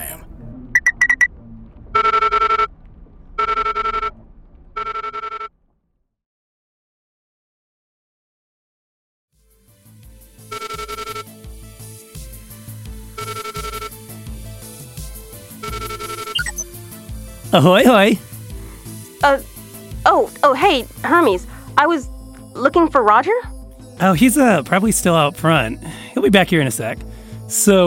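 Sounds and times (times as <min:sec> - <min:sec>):
low hum: 0:00.0 - 0:05.9
phone ringing through a desk speakerphone: 0:02.0 - 0:02.7, 0:03.4 - 0:04.1, 0:04.8 - 0:05.5, 0:10.5 - 0:11.4, 0:13.2 - 0:14.0, 0:15.6 - 0:16.6
speech: 0:17.5 - 0:18.3, 0:19.2 - 0:19.5, 0:20.5 - 0:27.8.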